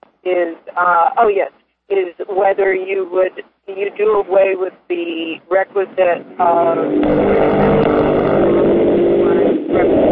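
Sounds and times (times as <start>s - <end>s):
speech: 0.2s - 7.8s
motorcycle engine droning: 5.0s - 10.1s.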